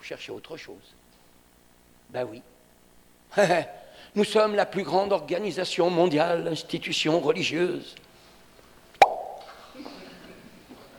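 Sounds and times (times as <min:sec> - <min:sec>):
speech: 0:00.1 - 0:01.1, 0:02.1 - 0:02.6, 0:03.3 - 0:08.0
cork popping out of a bottle: 0:09.0 - 0:09.6.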